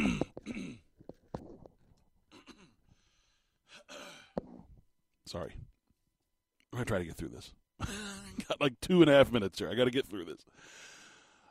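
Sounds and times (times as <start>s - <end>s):
radio host clearing throat: 0.0s - 0.9s, 2.3s - 2.8s
radio host coughing and choking: 0.0s - 0.9s, 2.3s - 2.8s
gasping breaths from a radio host: 2.4s - 4.4s, 10.5s - 11.4s
speech: 5.3s - 5.7s, 6.8s - 10.9s.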